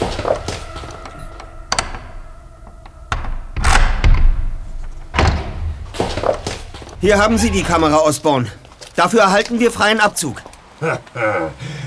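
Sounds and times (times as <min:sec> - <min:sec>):
steady tonal hum: 0:00.0 - 0:09.6
door being opened with knocks and bangs: 0:01.7 - 0:08.2
speech: 0:07.0 - 0:11.8.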